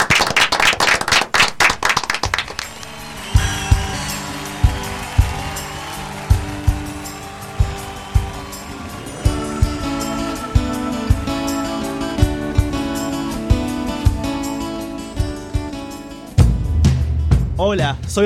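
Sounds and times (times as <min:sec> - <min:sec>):
studio audience applause: 0:00.0 - 0:14.2
music with a steady thumping low beat: 0:03.3 - 0:14.6, 0:15.2 - 0:18.2
speech: 0:17.7 - 0:18.2.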